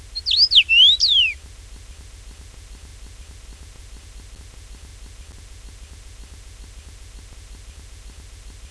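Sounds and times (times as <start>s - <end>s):
Carpodacus erythrinus singing: 0.0s - 1.4s.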